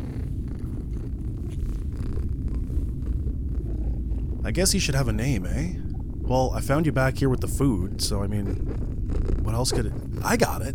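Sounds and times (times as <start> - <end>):
small cat purring: 0.0 - 10.7
speech: 4.4 - 10.7.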